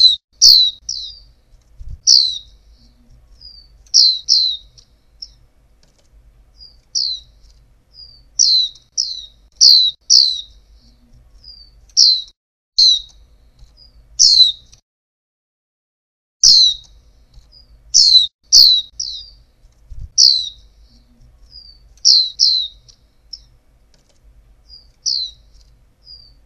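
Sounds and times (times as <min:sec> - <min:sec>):
female white-eye giving short high down-slurred chirps and soft thin notes: 0:00.0 - 0:01.3, 0:02.0 - 0:05.4, 0:08.0 - 0:13.1, 0:13.8 - 0:14.8, 0:16.4 - 0:16.9, 0:17.6 - 0:19.4, 0:20.2 - 0:23.6, 0:24.7 - 0:26.4
faint low hum: 0:00.0 - 0:14.8, 0:16.4 - 0:26.4.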